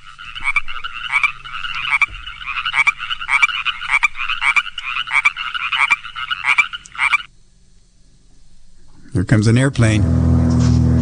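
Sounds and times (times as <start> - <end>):
chorus frogs calling from a pond in spring: 0.0 - 7.4
speech: 9.2 - 10.8.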